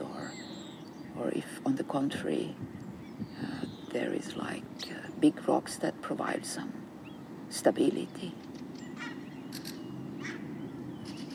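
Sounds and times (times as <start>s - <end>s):
steady low outdoor rumble: 0.0s - 11.3s
small bird chirping in a park: 0.2s - 1.2s, 2.8s - 5.3s, 8.2s - 11.3s
speech: 1.2s - 2.8s, 3.4s - 6.8s, 7.5s - 8.5s.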